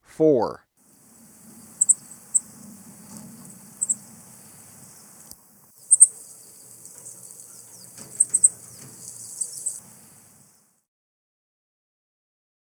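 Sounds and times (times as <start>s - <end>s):
faint low hum: 0.9s - 10.6s
golden-crowned tanager calls in Ecuador: 0.9s - 10.6s.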